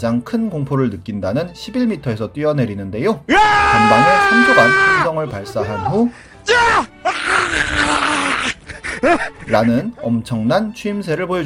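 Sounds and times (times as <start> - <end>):
speech: 0.0 - 6.9, 9.0 - 11.4
man screaming with a guttural rasp: 3.3 - 8.6.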